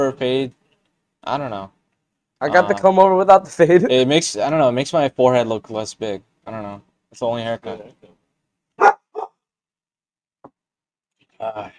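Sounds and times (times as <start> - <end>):
speech: 0.0 - 0.6, 1.2 - 1.8, 2.4 - 8.2, 11.4 - 11.7
dog barking in short sharp bursts: 8.8 - 9.4.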